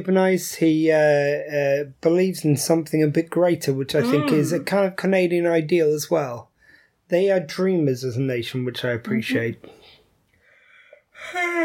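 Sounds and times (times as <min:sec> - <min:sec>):
speech: 0:00.0 - 0:06.5, 0:07.1 - 0:10.0, 0:11.2 - 0:11.6
person yawning: 0:04.0 - 0:04.7.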